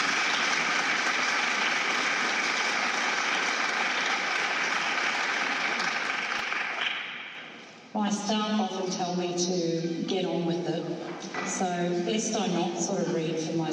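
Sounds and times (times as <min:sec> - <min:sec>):
large audience applause: 0:00.0 - 0:07.0
speech: 0:08.0 - 0:13.7.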